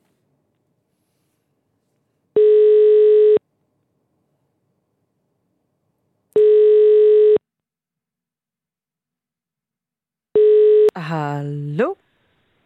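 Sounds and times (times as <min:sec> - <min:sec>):
telephone ringing tone: 0:02.4 - 0:03.4, 0:06.4 - 0:07.4, 0:10.4 - 0:10.9.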